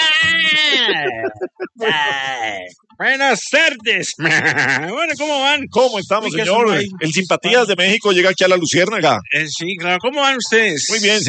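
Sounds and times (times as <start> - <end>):
goat bleating: 0.0 - 2.6, 4.2 - 5.0
laughter: 0.0 - 2.7, 4.0 - 6.9
speech: 0.8 - 11.2.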